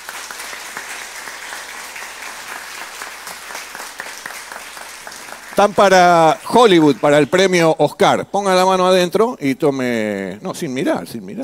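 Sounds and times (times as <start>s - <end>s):
audience applause: 0.0s - 7.8s
speech: 5.6s - 11.4s.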